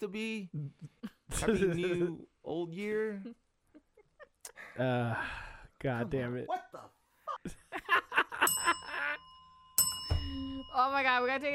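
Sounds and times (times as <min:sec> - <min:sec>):
speech: 0:00.0 - 0:03.4, 0:04.5 - 0:08.7, 0:10.3 - 0:11.5
bright bell ringing: 0:08.1 - 0:11.5.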